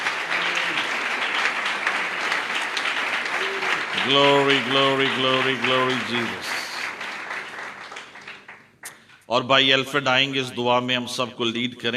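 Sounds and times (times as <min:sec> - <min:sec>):
church congregation applauding during a worship and prayer gathering: 0:00.0 - 0:09.2
speech: 0:04.0 - 0:06.6, 0:09.3 - 0:11.9.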